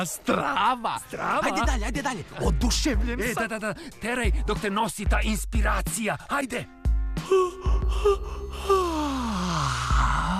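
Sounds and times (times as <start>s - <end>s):
speech: 0.0s - 10.3s
person yawning: 7.2s - 10.3s.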